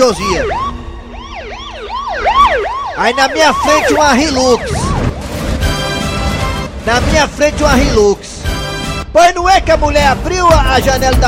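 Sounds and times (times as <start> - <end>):
speech: 0.0 - 0.8, 3.0 - 4.8, 6.9 - 8.4, 9.2 - 11.2
ambulance siren yelping in quick rising-and-falling sweeps: 0.0 - 6.8.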